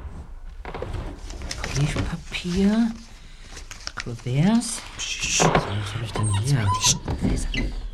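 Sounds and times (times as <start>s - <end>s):
items shuffling and knocking inside a desk drawer: 0.8s - 4.8s
speech: 2.4s - 3.1s, 4.0s - 7.8s.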